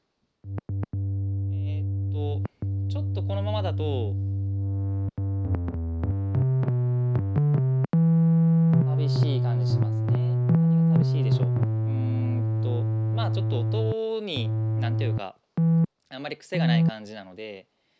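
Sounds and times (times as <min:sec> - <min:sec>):
sustained analog synthesizer tone with high frequencies filtered: 0:00.4 - 0:15.9, 0:16.6 - 0:16.9
speech: 0:03.3 - 0:04.3, 0:16.4 - 0:17.7.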